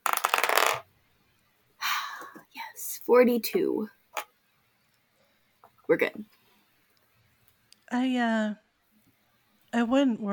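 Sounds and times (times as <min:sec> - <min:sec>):
dice rolling on a hard tabletop: 0:00.0 - 0:00.9
speech: 0:03.1 - 0:04.0, 0:05.9 - 0:06.4, 0:07.9 - 0:08.6, 0:09.7 - 0:10.3.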